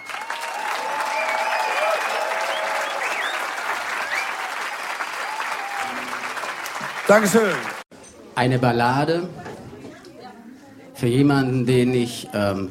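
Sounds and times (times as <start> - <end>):
people whooping: 0.0 - 6.9
audience applause: 0.0 - 7.9
speech: 7.1 - 7.7, 8.4 - 9.4, 11.0 - 12.6.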